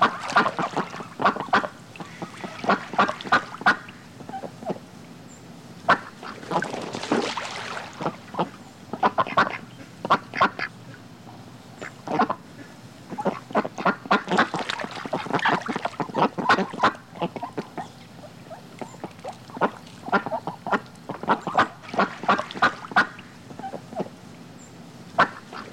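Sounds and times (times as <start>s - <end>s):
ducks splashing in water: 0.0s - 3.9s, 5.9s - 9.5s, 13.2s - 23.3s
duck quacking: 0.0s - 4.8s, 8.0s - 10.7s, 11.8s - 24.1s, 25.2s - 25.7s.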